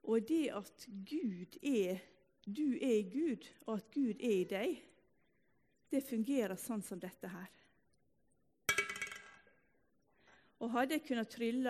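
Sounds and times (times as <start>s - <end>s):
speech: 0.1s - 4.9s, 5.9s - 7.6s, 10.6s - 11.6s
drinking glass from a prayer house kitchen clinking as picked up and set down: 8.7s - 9.5s.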